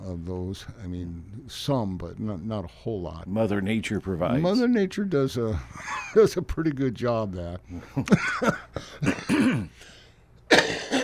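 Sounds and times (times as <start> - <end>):
speech: 0.1 - 10.9
person clearing throat: 8.2 - 9.8, 10.5 - 11.0
person coughing in short rough bursts: 8.2 - 9.8, 10.5 - 11.0.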